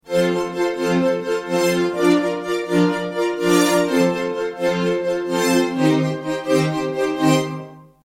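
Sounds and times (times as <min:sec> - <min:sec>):
D-50 synthesizer strings: 0:00.0 - 0:08.0.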